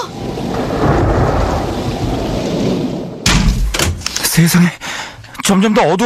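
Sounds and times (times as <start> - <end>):
strong howling wind of a dust storm: 0.0 - 3.4
speech: 4.4 - 4.8, 5.5 - 6.0.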